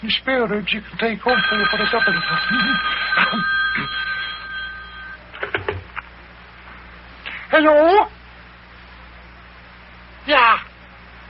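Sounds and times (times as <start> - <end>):
speech: 0.0 - 4.0, 7.6 - 8.2
telephone bell ringing with a shrill metallic trill: 1.3 - 5.2.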